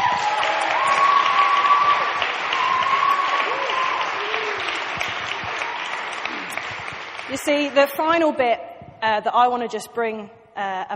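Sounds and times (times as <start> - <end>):
faint whoops and cheers from an audience: 0.0 - 6.3
sizable audience clapping: 0.0 - 8.4
speech: 7.4 - 10.9.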